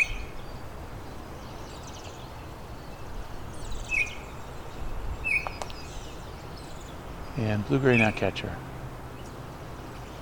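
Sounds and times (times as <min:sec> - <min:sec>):
Blackburnian warbler singing: 0:00.0 - 0:10.1
steady hiss of outdoor noise: 0:00.0 - 0:10.1
speech: 0:07.4 - 0:08.7.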